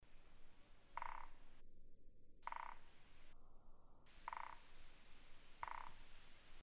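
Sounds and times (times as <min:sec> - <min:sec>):
Japanese pygmy woodpecker drumming: 0:00.9 - 0:01.6, 0:02.4 - 0:03.2, 0:04.1 - 0:06.2.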